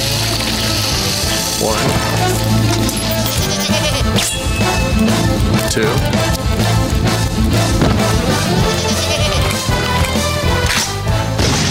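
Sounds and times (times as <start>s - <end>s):
dense noisy background: 0.0s - 11.3s
goat bleating: 3.1s - 4.3s, 8.4s - 9.7s
speech: 5.8s - 6.8s.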